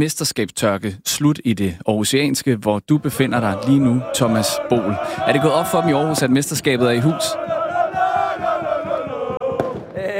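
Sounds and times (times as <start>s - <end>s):
speech: 0.0s - 7.6s
street crowd chanting celebrating a football championship in a bus street: 3.0s - 10.0s
regular rhythmic pulse: 3.0s - 10.1s.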